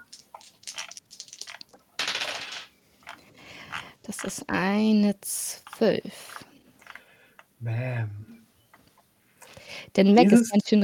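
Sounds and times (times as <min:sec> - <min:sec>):
dice rolling on a hard table in a tabletop game: 0:00.0 - 0:04.4
speech: 0:04.1 - 0:06.4, 0:07.6 - 0:08.2, 0:10.0 - 0:10.8.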